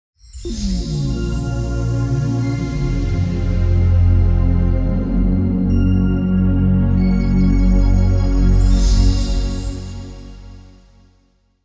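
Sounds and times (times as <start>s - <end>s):
ambient technology logo music: 0.3s - 11.2s.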